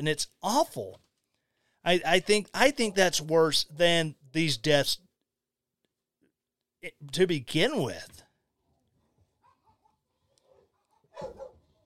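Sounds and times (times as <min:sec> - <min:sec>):
speech: 0:00.0 - 0:01.0, 0:01.8 - 0:05.0, 0:06.8 - 0:08.2
dog yapping: 0:09.4 - 0:11.8.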